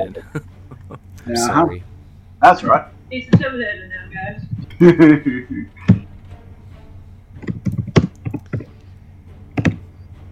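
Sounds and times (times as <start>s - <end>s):
speech: 0.0s - 0.5s, 1.2s - 5.8s
laughter: 0.0s - 1.6s, 4.6s - 6.0s
furious typing on a computer keyboard: 7.4s - 8.7s.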